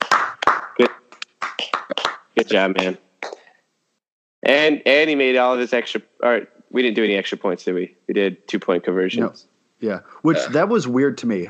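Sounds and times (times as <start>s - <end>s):
few people hand clapping: 0.0s - 3.4s
speech: 2.4s - 3.0s, 4.4s - 11.4s.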